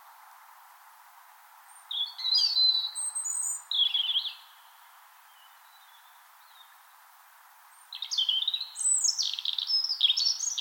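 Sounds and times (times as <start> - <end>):
European robin singing spring morning song in Finland: 1.7 - 6.8, 7.7 - 10.6.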